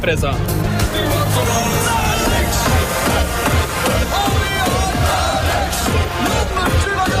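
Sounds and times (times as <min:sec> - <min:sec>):
crowd of football fans chanting on a street: 0:00.7 - 0:07.1
football fans shouting: 0:01.4 - 0:07.1.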